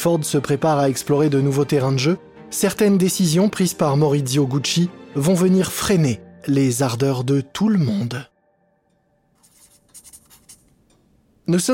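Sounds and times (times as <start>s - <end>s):
speech: 0.0s - 8.3s, 11.5s - 11.7s
pen drawing on a large paper pad: 9.4s - 10.8s.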